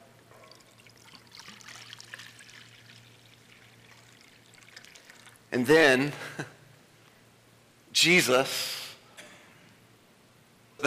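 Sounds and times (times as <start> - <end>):
water pouring into a basin: 0.5 - 5.5
speech: 5.5 - 6.6, 8.0 - 8.7.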